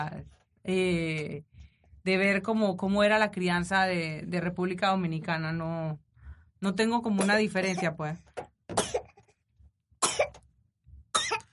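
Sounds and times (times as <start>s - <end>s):
speech: 0.0s - 6.0s, 6.6s - 9.0s
baby coughing while drinking from a bottle: 7.2s - 8.1s, 8.7s - 9.3s, 10.0s - 10.4s, 11.1s - 11.5s.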